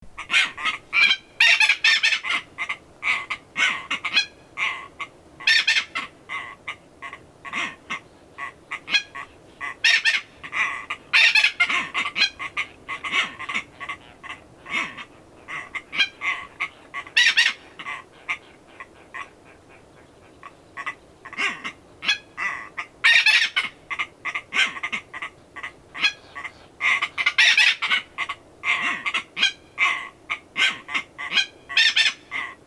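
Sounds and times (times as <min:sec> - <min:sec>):
Phaethon aethereus adult and young bird calling: 0:00.0 - 0:32.6.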